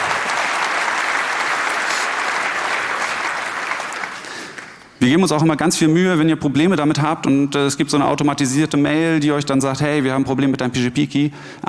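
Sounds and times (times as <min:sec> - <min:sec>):
audience applause with many hands clapping: 0:00.0 - 0:05.0
speech: 0:05.0 - 0:11.6.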